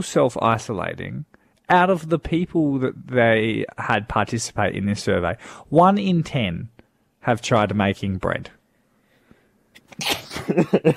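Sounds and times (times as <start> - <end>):
speech: 0.0 - 8.6, 9.9 - 10.9
sneeze: 9.9 - 10.6.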